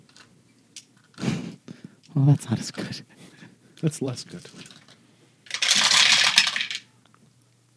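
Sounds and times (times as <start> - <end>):
speech: 2.2 - 4.7
handful of dice rolling on a table in a tabletop game: 4.5 - 6.9.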